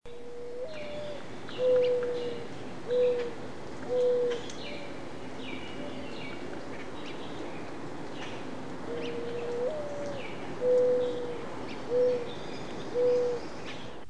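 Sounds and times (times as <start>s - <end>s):
mourning dove cooing: 0.1s - 5.1s, 5.7s - 6.5s, 8.8s - 13.6s.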